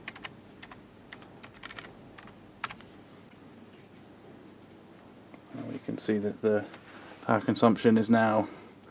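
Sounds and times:
typing on a USB computer keyboard: 0.0s - 2.8s
faint steady hiss: 0.0s - 8.8s
speech: 5.9s - 8.6s.

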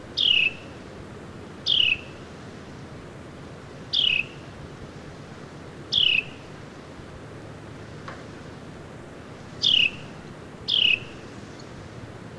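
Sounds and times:
Carolina wren calling: 0.0s - 0.8s, 1.6s - 2.2s, 3.8s - 4.6s, 5.9s - 6.6s, 9.4s - 11.8s
soft background hiss: 0.0s - 12.3s.

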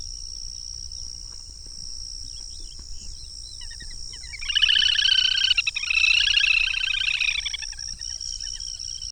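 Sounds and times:
little grebe giving a shrill whinnying trill: 2.2s - 9.1s.

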